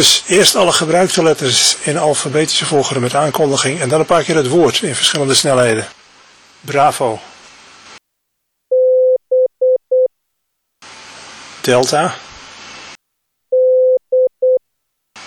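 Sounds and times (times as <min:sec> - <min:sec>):
speech: 0:00.0 - 0:06.0, 0:06.6 - 0:07.3, 0:11.6 - 0:12.3
static hiss: 0:00.0 - 0:08.0, 0:10.8 - 0:13.0
Morse code beeps: 0:08.7 - 0:10.1, 0:13.5 - 0:14.6.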